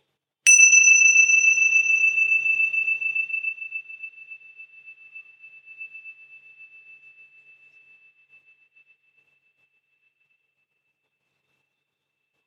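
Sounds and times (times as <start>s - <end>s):
meditation bell struck and ringing: 0.5s - 4.6s.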